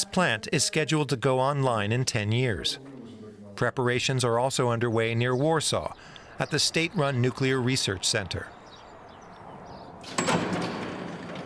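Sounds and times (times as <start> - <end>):
speech: 0.0 - 2.9, 3.6 - 8.6
heavy research reactor door opening with clunk and mechanical whoosh: 9.5 - 11.4.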